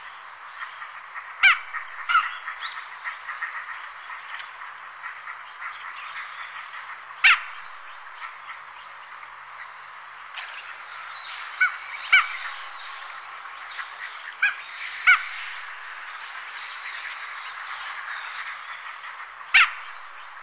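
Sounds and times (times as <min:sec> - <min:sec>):
Aix galericulata calling at sea off Sakhalin and the Kurils: 0:00.7 - 0:04.5, 0:05.0 - 0:07.5, 0:11.6 - 0:12.7, 0:13.8 - 0:15.6, 0:19.1 - 0:19.9.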